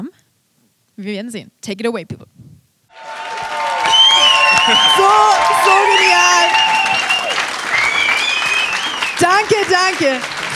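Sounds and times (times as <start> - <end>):
speech: 1.0 - 2.4, 4.7 - 7.1, 9.2 - 10.3
cheers and whoops: 2.9 - 9.2
audience applause: 2.9 - 10.5.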